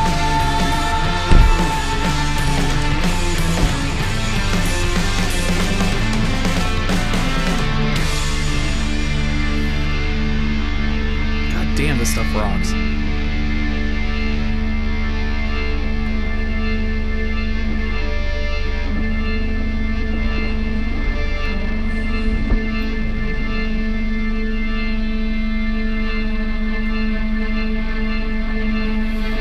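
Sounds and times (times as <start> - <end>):
organ keyboard holding sustained chords in a rock song: 0.0 - 29.3.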